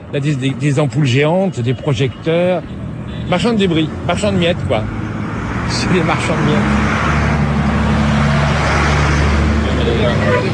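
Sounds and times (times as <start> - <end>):
broadband road noise: 0.0 - 10.5
speech: 0.1 - 5.0, 5.7 - 7.0, 9.9 - 10.5
large truck engine droning in street traffic: 2.7 - 10.5.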